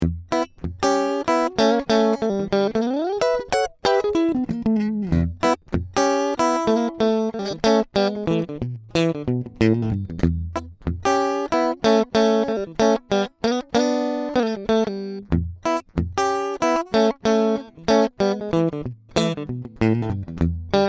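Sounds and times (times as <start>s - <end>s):
clean unprocessed Vibro King amplifier tone: 0.0s - 20.8s.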